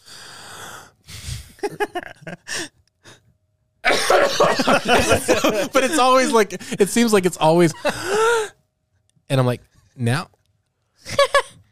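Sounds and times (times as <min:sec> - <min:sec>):
speech: 0:01.6 - 0:02.4, 0:04.6 - 0:08.5, 0:09.3 - 0:10.4
laughter: 0:01.6 - 0:02.5, 0:03.8 - 0:08.5
person vocally imitating a cough: 0:03.9 - 0:05.6.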